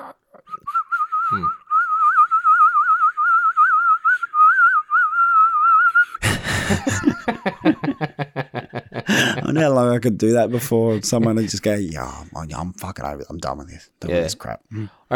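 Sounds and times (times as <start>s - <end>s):
person whistling one long wavering tone: 0.5s - 6.2s
speech: 1.3s - 1.6s, 9.6s - 15.1s
person laughing rhythmically: 6.2s - 11.8s.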